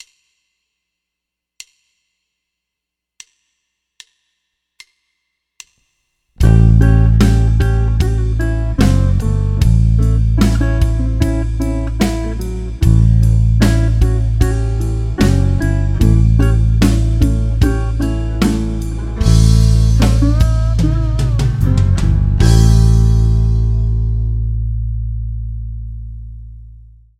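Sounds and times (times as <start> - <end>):
simple blues bass lick: 6.4 - 27.1.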